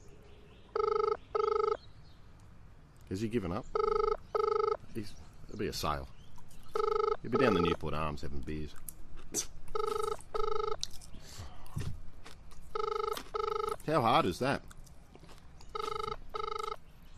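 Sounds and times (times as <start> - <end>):
outgoing phone call ringing in a double-burst pattern: 0.7 - 1.8, 3.7 - 4.8, 6.7 - 7.8, 9.7 - 10.8, 12.7 - 13.8, 15.7 - 16.8
speech: 3.1 - 4.0, 5.0 - 6.2, 6.8 - 9.5, 13.9 - 14.7.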